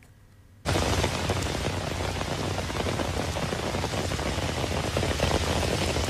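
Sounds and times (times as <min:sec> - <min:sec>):
flash floodwater rushing down a rural highway after heavy rain: 0:00.7 - 0:06.0.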